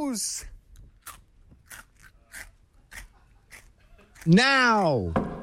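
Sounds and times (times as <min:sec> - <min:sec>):
speech: 0:00.2 - 0:00.5, 0:04.2 - 0:05.2
crunchy snack coins being munched: 0:00.7 - 0:04.4.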